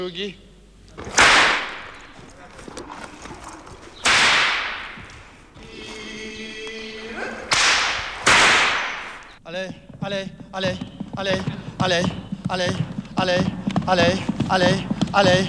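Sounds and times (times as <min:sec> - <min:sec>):
speech: 0:00.0 - 0:01.2, 0:09.5 - 0:15.4
loud sharp whip cracks: 0:01.1 - 0:02.0, 0:04.0 - 0:05.1, 0:07.5 - 0:09.3
faint tonal call: 0:05.6 - 0:07.5.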